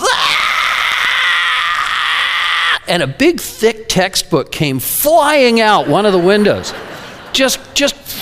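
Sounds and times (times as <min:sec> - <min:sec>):
blood-curdling scream through open windows at a Bible college: 0:00.0 - 0:02.9
speech: 0:02.9 - 0:08.1
laughter: 0:05.6 - 0:08.1.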